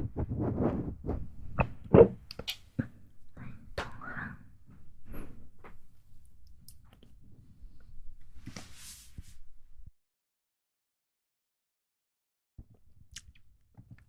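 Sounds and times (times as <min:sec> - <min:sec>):
quiet mouth sounds: 0:00.2 - 0:03.0.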